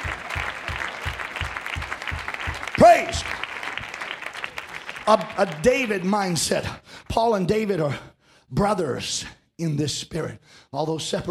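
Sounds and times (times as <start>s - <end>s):
church congregation clapping hands in a steady rhythm: 0.0s - 6.7s
speech: 2.8s - 3.4s, 5.1s - 11.2s.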